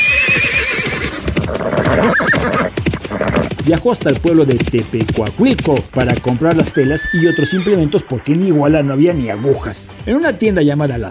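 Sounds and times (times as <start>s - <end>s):
horse neighing: 0.0s - 3.6s, 6.2s - 8.2s
horse hooves clip-clopping: 0.0s - 10.6s
speech: 3.7s - 11.0s.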